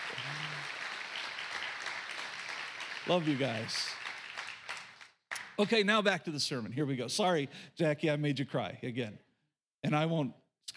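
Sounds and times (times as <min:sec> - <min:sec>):
crowd applauding in a large room: 0:00.0 - 0:05.6
speech: 0:03.0 - 0:04.0, 0:05.6 - 0:09.2, 0:09.8 - 0:10.7.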